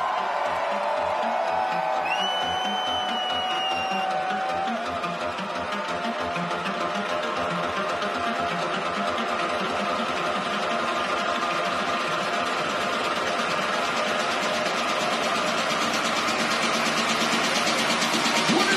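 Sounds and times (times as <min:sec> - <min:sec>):
large crowd screaming and cheering: 0:00.0 - 0:18.7
sustained whistles: 0:02.0 - 0:04.4.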